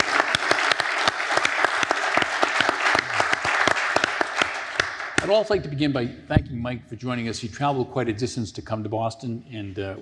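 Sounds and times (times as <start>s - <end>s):
audience applause: 0.0s - 5.3s
speech: 5.3s - 10.0s.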